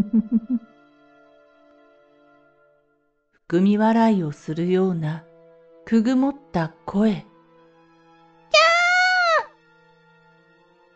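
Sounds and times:
speech: 0:00.0 - 0:00.8, 0:03.5 - 0:05.3, 0:05.9 - 0:07.3
high-pitched scream: 0:08.6 - 0:09.5.

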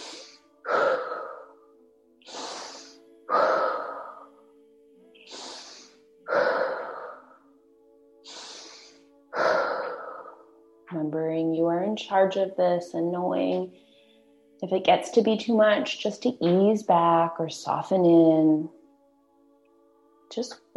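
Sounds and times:
intense breathing in through the nose and out through the mouth: 0:00.0 - 0:04.4, 0:05.2 - 0:07.4, 0:08.2 - 0:10.5
speech: 0:12.0 - 0:13.8, 0:14.6 - 0:18.8, 0:20.4 - 0:20.7.

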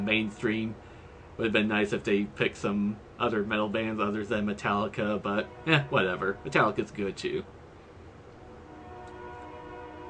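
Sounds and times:
speech: 0:00.0 - 0:07.6
rumble of rolling train wheels: 0:00.0 - 0:10.0
passing train whistle: 0:05.2 - 0:06.8, 0:08.4 - 0:10.0.

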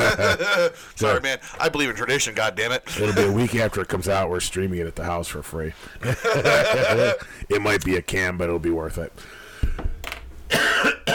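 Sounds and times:
laughter: 0:00.0 - 0:00.9, 0:06.0 - 0:07.4
speech: 0:00.1 - 0:09.9
congested person coughing: 0:10.5 - 0:11.1.

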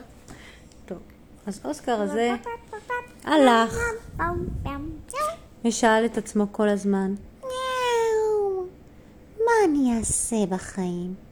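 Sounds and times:
speech: 0:00.9 - 0:02.6, 0:03.2 - 0:04.9, 0:05.6 - 0:07.3, 0:10.0 - 0:11.3
cat meowing: 0:07.4 - 0:08.4.

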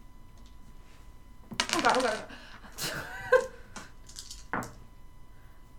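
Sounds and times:
many dice rattling and clattering across a hard tabletop: 0:01.5 - 0:02.3, 0:03.4 - 0:04.8.

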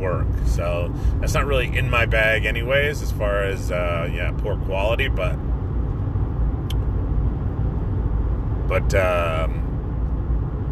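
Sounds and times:
road traffic rumble: 0:00.0 - 0:10.7
speech: 0:00.1 - 0:05.6, 0:08.7 - 0:09.6.

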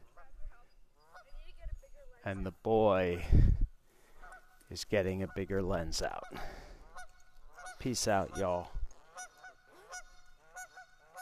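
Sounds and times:
geese honking: 0:00.0 - 0:01.6, 0:04.0 - 0:11.2
speech: 0:02.2 - 0:03.6, 0:04.7 - 0:06.7, 0:07.8 - 0:08.8.

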